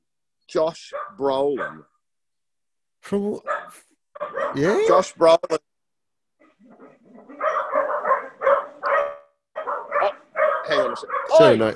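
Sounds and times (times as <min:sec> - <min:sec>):
speech: 0:00.5 - 0:01.9, 0:03.0 - 0:05.7, 0:10.7 - 0:11.7
dogs barking: 0:00.8 - 0:02.0, 0:03.4 - 0:05.0, 0:06.4 - 0:11.7.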